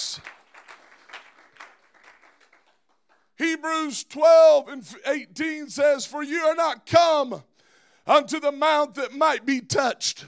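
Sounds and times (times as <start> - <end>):
crowd clapping: 0.0 - 3.4
speech: 3.6 - 10.2.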